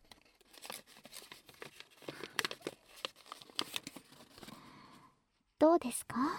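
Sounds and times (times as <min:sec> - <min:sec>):
origami paper crinkling as a folded origami sheet is pulled open: 0:00.0 - 0:04.7
speech: 0:05.7 - 0:06.3.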